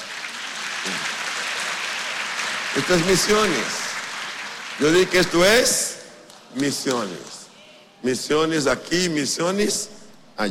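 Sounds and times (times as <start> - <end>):
crowd applause at a religious gathering: 0.0 - 7.5
speech: 2.8 - 3.8, 4.8 - 5.8, 6.5 - 7.4, 8.0 - 10.5.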